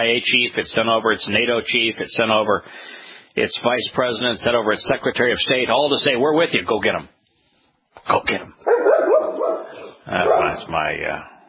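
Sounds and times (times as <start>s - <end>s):
speech: 0.0s - 7.2s, 8.0s - 8.7s, 10.1s - 11.3s
female dog barking in whiny bursts: 8.6s - 10.7s.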